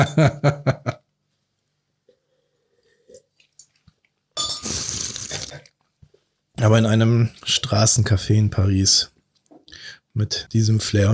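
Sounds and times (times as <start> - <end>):
speech: 0.0 - 1.0, 6.6 - 9.1, 10.2 - 11.1
wine glasses of warm white wine clinking in a toast: 4.4 - 4.9.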